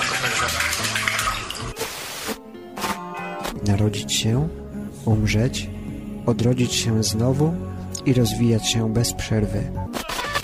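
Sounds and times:
water sloshing and splashing in a bathtub: 0.0s - 2.3s
speech: 0.4s - 0.9s, 3.7s - 10.1s.

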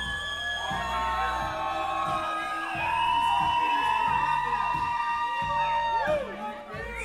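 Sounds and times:
large crowd outside screaming and cheering for a musician: 0.0s - 7.0s.

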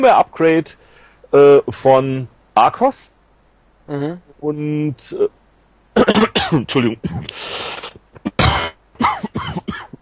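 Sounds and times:
speech: 0.0s - 3.2s, 3.9s - 5.4s, 6.1s - 7.9s
person coughing over a poor Skype connection: 6.0s - 7.6s, 8.2s - 9.9s.

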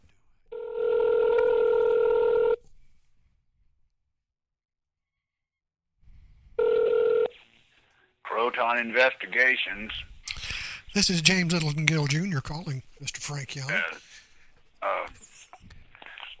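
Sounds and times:
electronic ringing tone on a phone line: 0.5s - 2.6s, 6.6s - 7.4s
speech: 8.5s - 10.1s, 10.9s - 14.2s.

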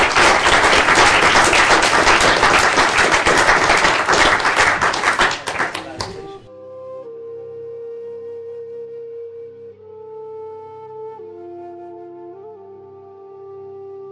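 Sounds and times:
large audience applauding at a medical society lecture in Glasgow: 0.0s - 6.5s.

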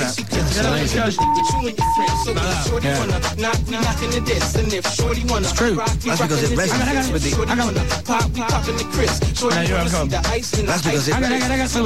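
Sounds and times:
speech: 0.6s - 11.8s
phone beeps on a record: 1.2s - 2.3s
busy recorded music with a strong beat: 1.2s - 11.8s.

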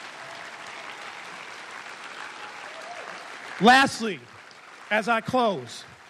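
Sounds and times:
large audience applause: 0.0s - 6.0s
speech: 3.6s - 4.3s, 4.9s - 5.9s.

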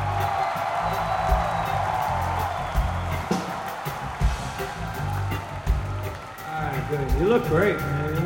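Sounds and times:
shouts and whoops: 0.0s - 5.2s
audience applauding in a hall: 0.0s - 7.4s
speech: 7.2s - 8.0s.

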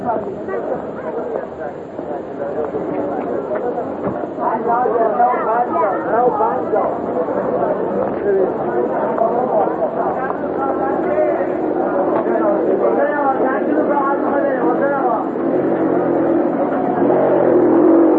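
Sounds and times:
bustling crowd chatter in narrow passageways: 0.0s - 18.1s
motor scooter roaring and revving in a narrow passageway: 15.3s - 18.1s.

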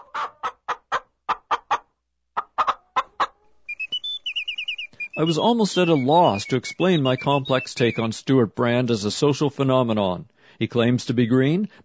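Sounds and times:
chicken clucking and squawking: 0.0s - 8.1s
speech: 5.2s - 11.8s.

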